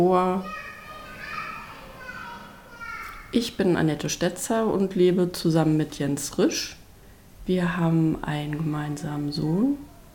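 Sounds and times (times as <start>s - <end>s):
speech: 0.0s - 0.6s, 3.3s - 6.8s, 7.5s - 9.9s
small children calling and shouting outdoors: 0.1s - 3.4s.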